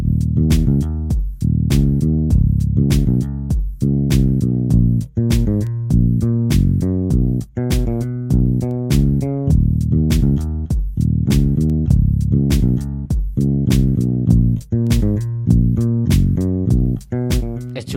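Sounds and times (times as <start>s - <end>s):
elaborate deep punchy bass line of a song: 0.0s - 17.9s
electronic drums of a song: 0.0s - 17.9s.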